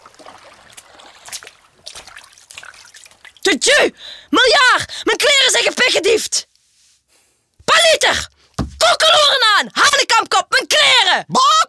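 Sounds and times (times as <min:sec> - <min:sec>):
water splashing and trickling as someone climbs out after a swim: 0:00.0 - 0:03.5
speech: 0:03.4 - 0:06.5, 0:07.8 - 0:08.3, 0:09.0 - 0:11.6.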